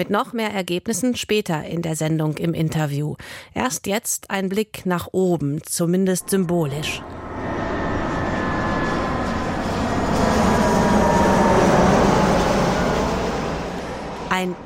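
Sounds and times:
speech: 0:00.0 - 0:07.2, 0:14.4 - 0:14.6
airplane flying past overhead: 0:06.2 - 0:14.6.

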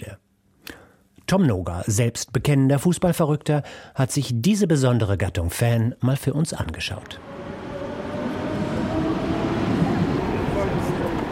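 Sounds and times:
speech: 0:01.3 - 0:07.6
continuous low rumble at a train station car park: 0:07.2 - 0:11.3
faint hum from rail traffic: 0:07.2 - 0:11.3.

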